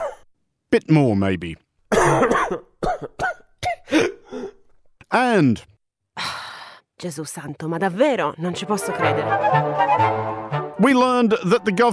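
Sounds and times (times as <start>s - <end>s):
person coughing: 0.0s - 0.3s, 1.9s - 4.6s
speech: 0.7s - 3.2s, 5.1s - 6.4s, 7.0s - 10.2s, 10.8s - 11.9s.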